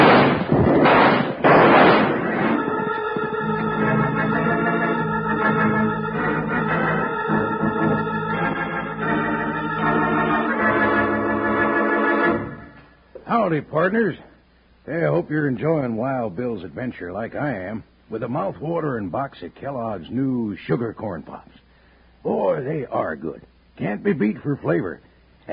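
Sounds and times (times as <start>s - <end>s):
rifle shots in an old western radio drama gunfight: 0.0s - 2.8s
sustained swelling music in an old western radio drama: 0.8s - 12.7s
speech: 13.6s - 14.3s, 14.9s - 21.6s, 22.2s - 25.5s.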